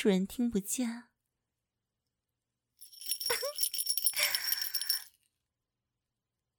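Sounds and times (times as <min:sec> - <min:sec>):
speech: 0:00.0 - 0:01.1
small bell being shaken: 0:02.8 - 0:05.2.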